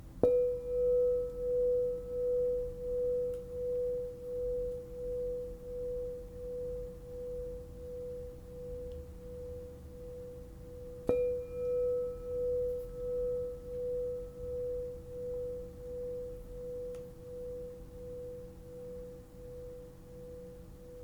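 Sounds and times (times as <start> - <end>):
5.5 inch crystal bowl ringing in B: 0.0 - 21.0.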